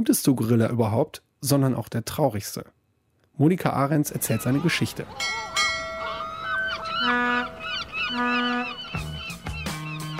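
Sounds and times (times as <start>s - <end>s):
speech: 0.0s - 2.8s, 3.4s - 5.6s, 8.1s - 8.4s
monkeys and guenons calling aboard a ship: 4.2s - 10.1s
over 100 parrots squawking aboard a ship: 4.2s - 10.1s.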